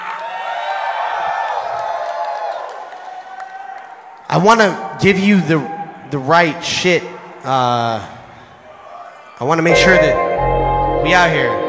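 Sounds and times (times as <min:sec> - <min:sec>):
large indoor conference crowd cheering and whooping: 0:00.0 - 0:04.2
people clapping: 0:00.0 - 0:04.3
speech: 0:04.3 - 0:08.2, 0:09.4 - 0:10.2, 0:11.0 - 0:11.6.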